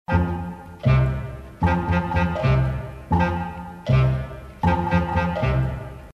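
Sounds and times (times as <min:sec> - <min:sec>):
clarinet clock loop: 0:00.1 - 0:06.1.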